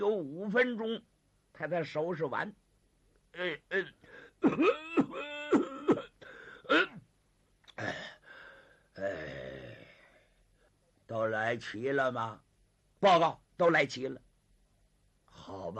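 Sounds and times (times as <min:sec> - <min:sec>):
speech: 0:00.0 - 0:02.6, 0:03.3 - 0:05.7, 0:06.7 - 0:07.0, 0:07.8 - 0:08.1, 0:09.0 - 0:09.8, 0:11.1 - 0:12.4, 0:13.0 - 0:14.2, 0:15.4 - 0:15.7
man imitating a very old man's coughing and throat clearing: 0:03.4 - 0:07.0.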